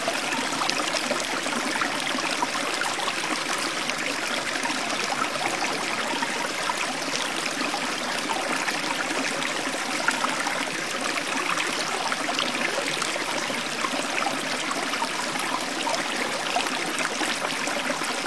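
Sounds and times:
small stream babbling: 0.0s - 18.2s.

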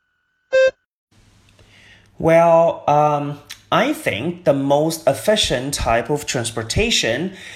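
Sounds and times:
short electronic beep prompting the speaker to begin: 0.5s - 0.8s
speech: 2.2s - 7.5s.

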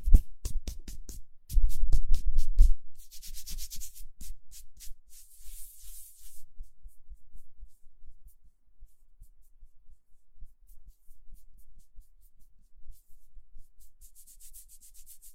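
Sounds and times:
hands rubbing together: 0.0s - 6.5s, 13.8s - 15.3s.

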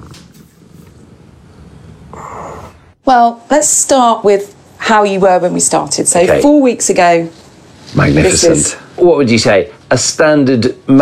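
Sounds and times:
cat purring: 0.0s - 2.8s
speech: 3.1s - 11.0s.

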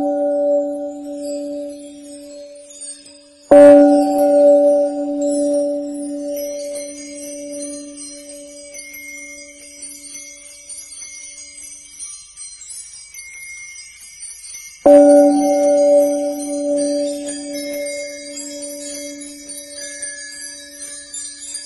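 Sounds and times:
Tibetan singing bowl struck and ringing: 0.0s - 2.6s, 3.5s - 9.2s, 14.9s - 20.9s
faint high tinkling layer: 0.0s - 21.6s.

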